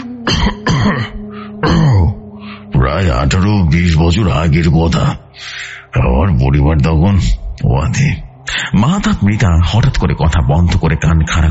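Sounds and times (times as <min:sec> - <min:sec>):
person clearing throat: 0:00.0 - 0:02.2
speech: 0:02.9 - 0:11.5.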